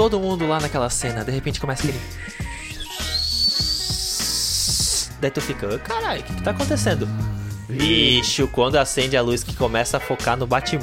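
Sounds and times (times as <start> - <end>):
speech: 0.0 - 2.5, 5.2 - 10.8
faint low thumps: 6.0 - 8.6
voice imitating a car jet turbine engine spooling up: 6.1 - 8.4.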